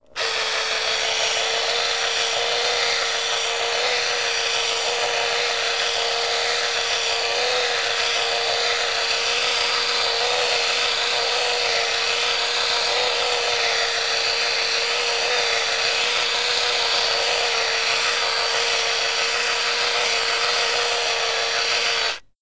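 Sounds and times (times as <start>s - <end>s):
electric shaver buzzing: 0.0s - 22.4s.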